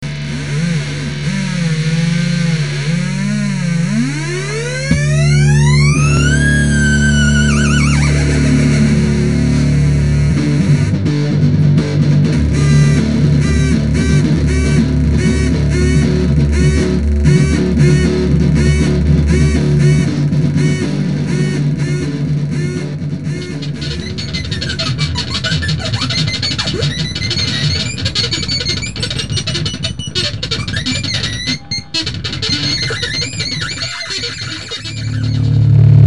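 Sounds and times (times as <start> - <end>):
Big Muff fuzz pedal sound: 0.0 - 36.0.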